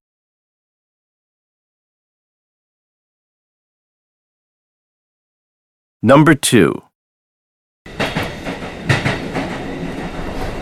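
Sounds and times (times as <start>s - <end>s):
speech: 6.0s - 6.9s
train rumbling on rails: 7.9s - 10.6s
wheels clickety-clack over track joints: 7.9s - 10.6s.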